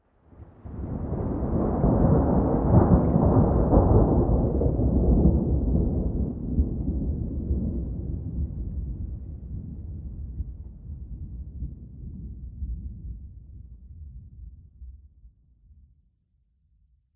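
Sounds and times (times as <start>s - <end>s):
real thunder ambience: 0.4s - 13.3s.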